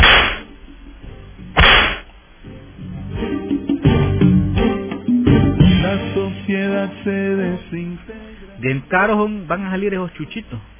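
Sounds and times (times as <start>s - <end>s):
whip crack sound effect: 0.0s - 0.5s, 1.6s - 2.1s
rhythmic music with strong beats: 0.0s - 7.6s
speech: 6.2s - 10.7s.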